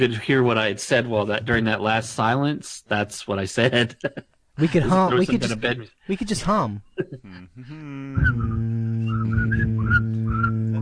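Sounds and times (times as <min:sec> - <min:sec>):
speech: 0:00.0 - 0:10.6
person whistling a wavering tune: 0:07.8 - 0:10.8.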